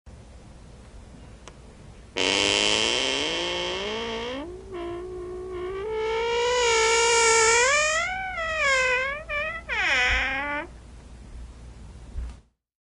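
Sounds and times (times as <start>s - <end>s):
door opening slowly: 2.2s - 10.8s.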